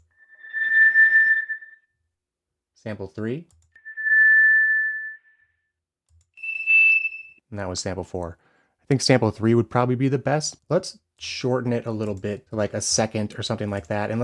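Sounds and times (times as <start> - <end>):
generated microphone feedback squeal: 0.0 - 1.8, 3.8 - 5.4, 6.4 - 7.4
speech: 2.8 - 3.6, 7.5 - 14.2.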